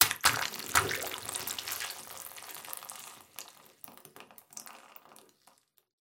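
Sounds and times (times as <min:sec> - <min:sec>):
ambient dripping: 0:00.0 - 0:05.4.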